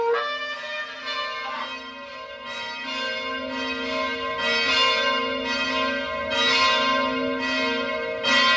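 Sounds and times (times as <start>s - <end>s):
church bells ringing in a continuous peal: 0.1s - 8.5s.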